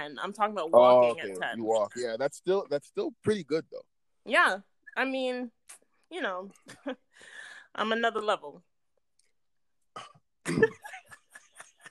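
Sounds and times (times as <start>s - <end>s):
speech: 0.1s - 8.7s
person clearing throat: 10.0s - 10.8s.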